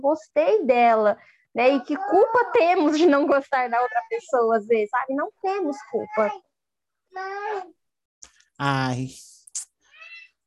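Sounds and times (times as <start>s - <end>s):
speech: 0.0s - 6.5s, 7.1s - 7.8s, 8.6s - 9.3s
female pet cat meowing: 9.9s - 10.4s.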